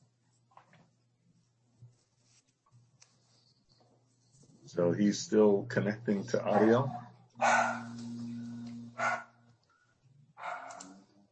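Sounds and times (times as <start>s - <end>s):
steady low electrical hum: 0.0s - 11.3s
speech: 4.7s - 7.5s
big dog barking: 6.4s - 8.0s, 9.0s - 9.3s, 10.4s - 10.9s.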